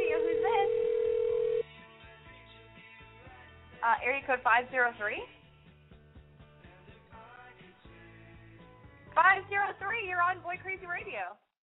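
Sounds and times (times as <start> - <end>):
telephone line beep tone as a phone call is picked up: 0.0 - 1.6
speech: 3.8 - 5.4, 9.2 - 11.4.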